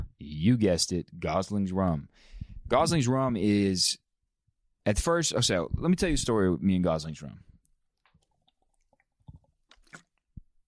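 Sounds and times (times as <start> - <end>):
speech: 0.2 - 4.0, 4.8 - 7.5
person sipping coconut water: 8.0 - 10.4
soft wet slurping and squishy mouth noises: 8.0 - 10.5
person gulping coconut water: 8.0 - 10.6.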